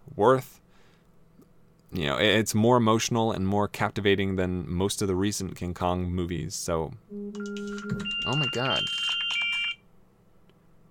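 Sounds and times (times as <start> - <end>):
speech: 0.2 - 0.6, 1.9 - 9.1
loud shrill electronic alarm beeping: 7.1 - 9.8.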